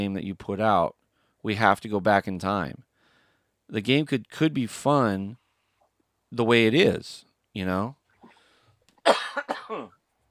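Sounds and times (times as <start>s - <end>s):
speech: 0.0s - 2.9s, 3.7s - 5.4s, 6.3s - 8.0s
person coughing harshly: 9.0s - 10.0s.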